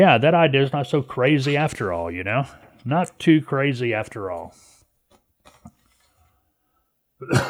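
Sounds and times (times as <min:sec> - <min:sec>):
speech: 0:00.0 - 0:04.7, 0:07.2 - 0:07.4
soft mouth noises: 0:04.5 - 0:06.4
person coughing: 0:07.2 - 0:07.4.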